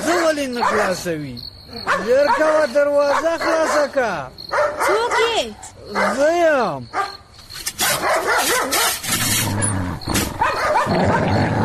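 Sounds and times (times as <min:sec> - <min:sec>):
dog barking at a door: 0:00.0 - 0:01.0, 0:01.8 - 0:03.9, 0:04.5 - 0:06.3, 0:06.9 - 0:07.2, 0:07.8 - 0:09.0, 0:10.3 - 0:11.3
speech: 0:00.5 - 0:07.2, 0:08.0 - 0:09.6, 0:10.9 - 0:11.5.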